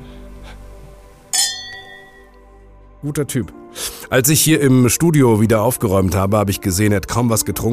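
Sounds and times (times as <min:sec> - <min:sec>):
wine glasses clinking in a toast: 0:01.3 - 0:02.3
speech: 0:03.0 - 0:07.7.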